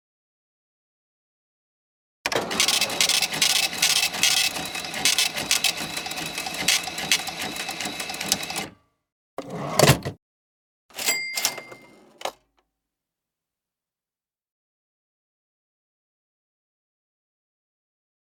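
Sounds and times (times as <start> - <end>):
cash register: 2.3 - 8.8, 9.4 - 10.2, 10.9 - 12.4.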